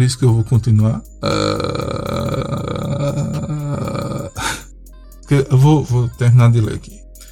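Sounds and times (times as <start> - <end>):
speech: 0.0 - 2.1, 5.3 - 7.0
person groaning imitating a mummy: 1.2 - 4.6.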